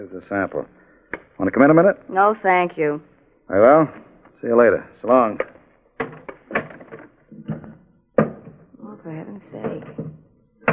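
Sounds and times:
speech: 0.0 - 0.8, 1.4 - 5.5, 9.4 - 10.0
heavy wooden clunks and knocks: 5.4 - 8.7, 9.5 - 10.7
door thudding shut: 6.0 - 8.7, 9.6 - 10.7.

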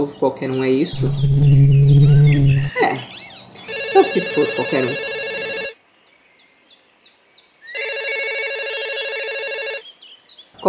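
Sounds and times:
speech: 0.0 - 2.0, 4.0 - 5.1
telephone ringing with bright bell-like electronic tone: 3.7 - 5.8, 7.8 - 9.8.

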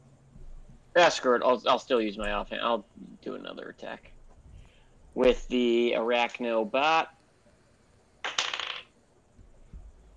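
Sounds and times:
speech: 1.0 - 4.2, 5.2 - 7.2
small dice clattering across a table: 8.2 - 9.0.

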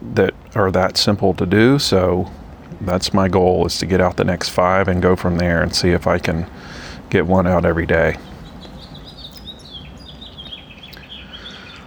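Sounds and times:
steady low outdoor rumble: 0.0 - 11.8
speech: 0.2 - 8.3
house finch singing outdoors: 2.8 - 11.8.

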